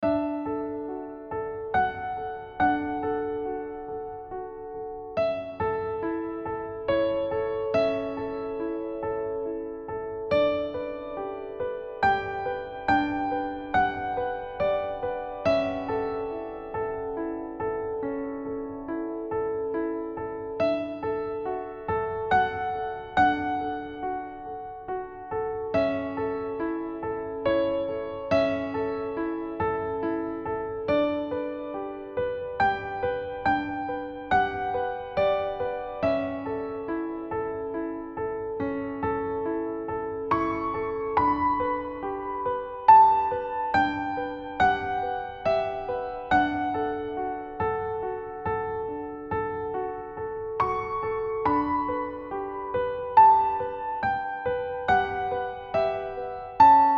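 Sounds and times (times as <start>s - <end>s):
happy solo piano piece: 0.0s - 56.9s.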